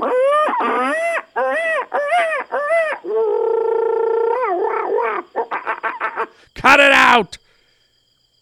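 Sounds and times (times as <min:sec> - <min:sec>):
person imitating monkey calls with whoops, hoots and yelps: 0:00.0 - 0:06.4
speech: 0:06.6 - 0:07.4.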